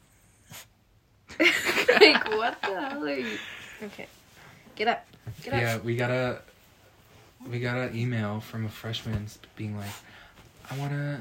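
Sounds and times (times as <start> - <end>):
dog sneezing: 0.4 - 0.8
speech: 2.0 - 4.2, 4.8 - 6.5, 7.4 - 10.1, 10.7 - 11.2.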